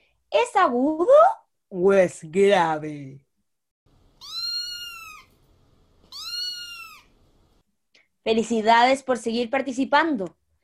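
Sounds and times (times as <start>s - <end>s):
speech: 0.3s - 3.2s, 8.2s - 10.4s
cat meowing: 4.2s - 5.4s, 6.0s - 7.2s.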